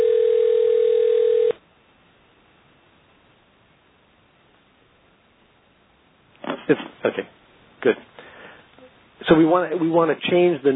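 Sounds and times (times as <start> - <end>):
telephone ringing with a steady electronic tone: 0.0 - 1.6
speech: 6.7 - 8.2, 9.3 - 10.7.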